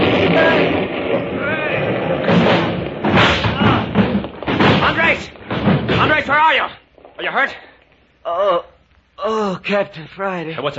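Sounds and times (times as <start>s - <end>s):
loud explosion: 0.0s - 7.2s
collapsing masonry with tumbling debris: 0.0s - 7.8s
speech: 6.4s - 10.7s.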